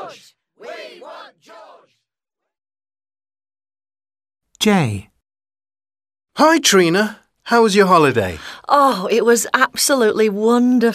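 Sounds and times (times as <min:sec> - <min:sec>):
crowd shouting in unison for a film star: 0:00.0 - 0:02.0
speech: 0:00.1 - 0:00.4, 0:04.6 - 0:05.1, 0:06.4 - 0:10.9.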